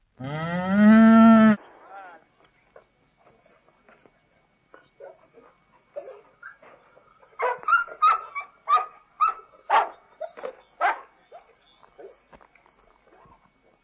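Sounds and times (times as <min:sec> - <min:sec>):
cow: 0:00.2 - 0:02.2
dog: 0:02.6 - 0:13.8.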